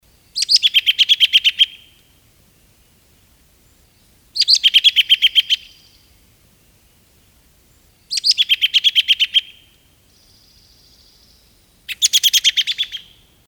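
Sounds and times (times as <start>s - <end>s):
robin danger call: 0.2s - 2.1s, 3.8s - 6.2s, 8.0s - 13.3s.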